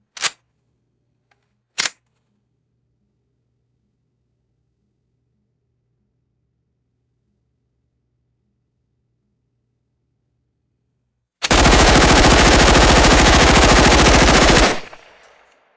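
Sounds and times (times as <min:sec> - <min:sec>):
submachine gun semi-automatic burst indoors: 0:11.4 - 0:15.5.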